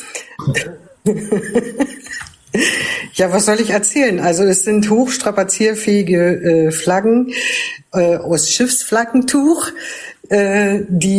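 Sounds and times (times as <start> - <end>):
person coughing with rough coughs: 0.0 - 1.0
speech: 0.4 - 2.0, 3.2 - 11.1.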